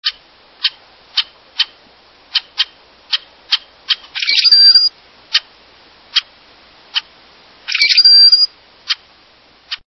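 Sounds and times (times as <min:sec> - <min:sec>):
Rusty Blackbird calling: 0:00.0 - 0:05.5, 0:06.1 - 0:06.3, 0:06.9 - 0:09.1.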